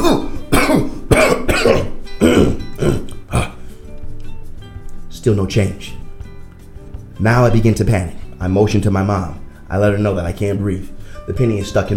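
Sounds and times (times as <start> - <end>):
heavy forceful coughs with raspy throat-clearing: 0.0 - 3.7
speech: 5.2 - 6.0, 7.2 - 11.9.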